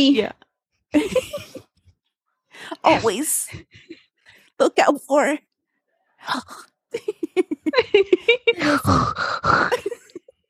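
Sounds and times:
speech: 0.0 - 1.5, 2.6 - 4.0, 4.6 - 5.5, 6.2 - 10.0
laughter: 0.9 - 1.9, 6.9 - 8.8, 9.6 - 10.4
voice imitating a woman's gasping last breaths: 8.6 - 10.0.

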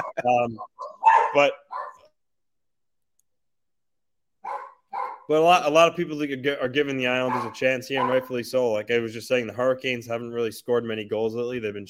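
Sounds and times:
speech: 0.2 - 0.7, 1.3 - 1.7, 5.3 - 11.8
dogs barking: 0.6 - 2.1, 4.4 - 5.3, 7.2 - 8.4.

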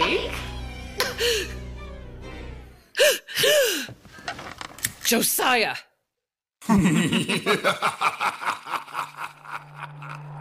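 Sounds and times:
poisoned woman gasping for breath: 1.1 - 1.6, 3.0 - 4.0
speech: 5.1 - 5.9, 6.7 - 8.3
laughter: 6.6 - 10.4.

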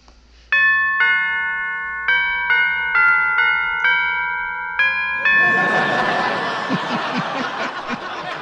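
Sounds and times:
house doorbell chiming a long melodic tune: 0.5 - 8.3
crowd noise: 5.2 - 8.3
burst of laughter: 5.3 - 8.3.

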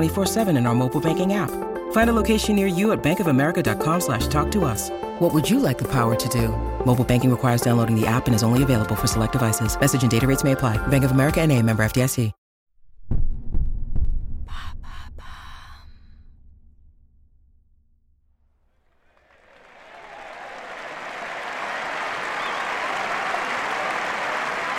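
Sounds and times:
speech: 0.0 - 12.4
low rumble: 12.8 - 18.3
deep booming thuds: 12.9 - 15.3
large tennis crowd roaring and cheering in the stands: 19.1 - 24.7.

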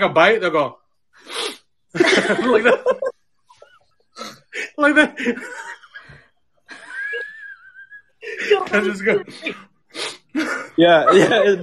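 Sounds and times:
speech: 0.0 - 1.3, 1.9 - 3.1, 4.8 - 5.6, 8.3 - 11.6
person imitating a sniff after taking a bite: 1.2 - 1.7, 9.9 - 10.3
laughter: 2.0 - 4.0, 4.9 - 9.4, 10.4 - 11.6.

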